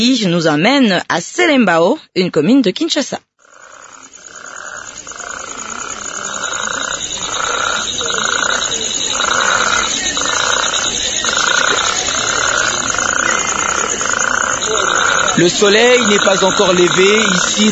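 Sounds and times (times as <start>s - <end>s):
speech: 0.0s - 3.3s, 15.4s - 17.7s
toads croaking before dawn: 2.9s - 17.7s
shrill insect-like buzz: 3.7s - 17.7s.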